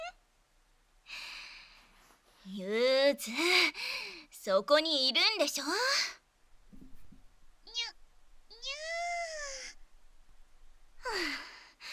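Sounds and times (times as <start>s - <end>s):
speech: 2.5s - 6.2s
person imitating a cat's meow: 8.5s - 9.8s.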